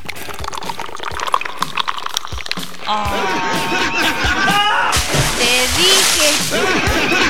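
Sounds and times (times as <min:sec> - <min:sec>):
person falling into a swimming pool with a heavy splash: 0:00.0 - 0:07.2
pool water sloshing: 0:00.0 - 0:07.2
speech: 0:02.9 - 0:04.2, 0:05.4 - 0:07.2
people exclaiming and laughing: 0:02.9 - 0:07.2.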